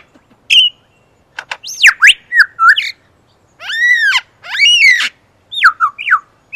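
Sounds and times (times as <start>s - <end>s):
superb lyrebird song: 0.5s - 1.0s, 1.6s - 3.0s, 3.7s - 6.5s.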